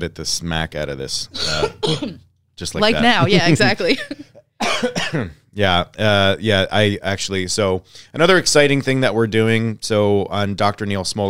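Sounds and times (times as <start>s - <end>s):
speech: 0.0s - 11.2s
person with a small cold clearing throat: 1.4s - 2.2s, 4.6s - 5.4s
laughter: 2.8s - 4.4s.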